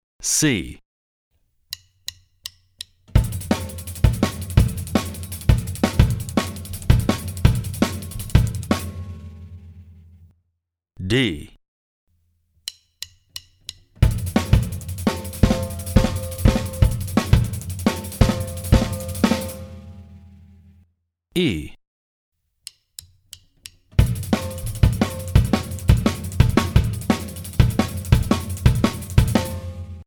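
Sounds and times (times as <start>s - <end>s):
drum and bass beats on a jazz drum kit: 3.2s - 9.8s, 14.0s - 20.1s, 24.0s - 30.0s.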